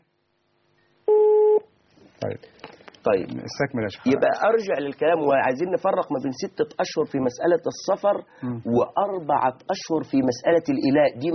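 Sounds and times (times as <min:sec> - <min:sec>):
electronic tone of a telephone call coming in on a call-in show: 0:01.1 - 0:01.7
speech: 0:02.2 - 0:11.3.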